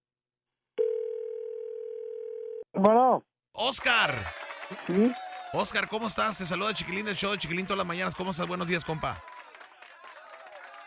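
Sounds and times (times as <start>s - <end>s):
telephone line ringing tone on an outgoing call: 0.8s - 2.6s
speech: 2.8s - 9.3s.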